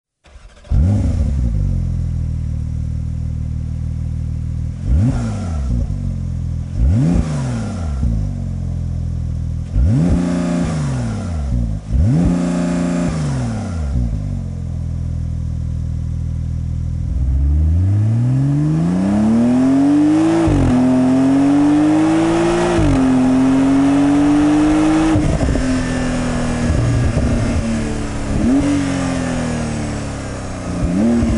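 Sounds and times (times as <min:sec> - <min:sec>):
Porsche 911 Turbo 992 with slip-on race exhaust: 0:00.3 - 0:31.3.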